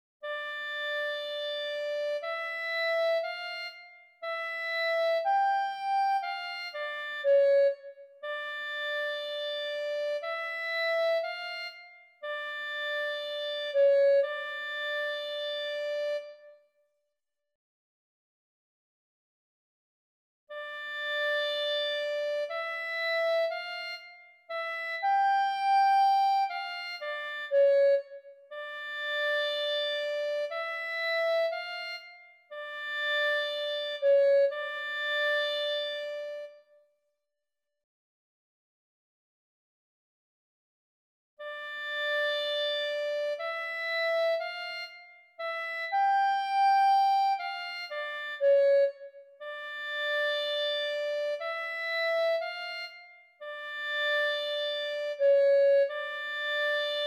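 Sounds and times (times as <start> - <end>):
clarinet piece: 0.2 - 16.8, 20.5 - 36.9, 41.4 - 57.0.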